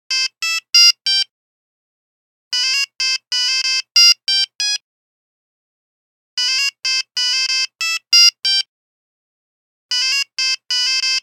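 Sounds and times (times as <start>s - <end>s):
phone buzzer tango ringtone: 0.1s - 1.2s, 2.6s - 4.8s, 6.4s - 8.7s, 9.9s - 11.2s.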